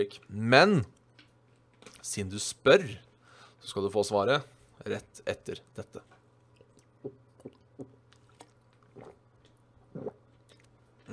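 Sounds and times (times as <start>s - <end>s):
speech: 0.0s - 1.0s, 2.0s - 6.2s, 7.0s - 7.6s
person drinking water: 6.4s - 11.1s.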